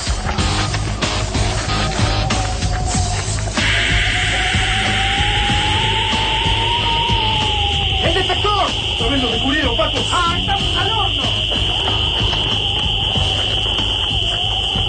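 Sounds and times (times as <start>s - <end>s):
voices in a town plaza: 0.7s - 14.8s
alarm sounding with a steady high-pitched tone in a town plaza: 3.6s - 14.8s.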